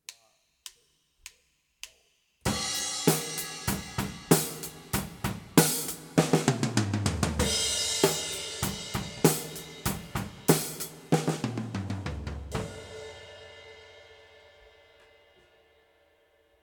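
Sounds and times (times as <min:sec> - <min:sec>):
drum recording with overhead reverb: 0:02.5 - 0:14.8.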